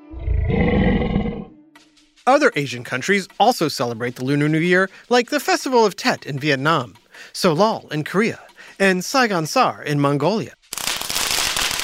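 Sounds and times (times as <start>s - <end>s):
deep rumbling tiger roar: 0.0s - 1.5s
speech: 0.1s - 1.0s, 2.3s - 10.6s.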